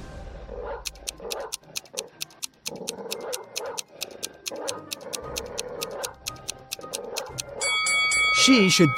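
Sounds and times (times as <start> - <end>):
dog growling low in rough rumbling bursts: 0.6 - 6.2
regular ticking: 0.8 - 8.9
speech: 8.4 - 8.9.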